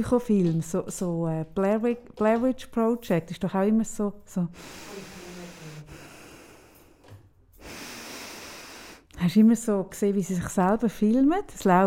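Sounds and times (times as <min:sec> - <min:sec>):
speech: 0:00.0 - 0:05.2, 0:09.2 - 0:11.8
heavy snorting breaths through a face mask: 0:04.5 - 0:09.1.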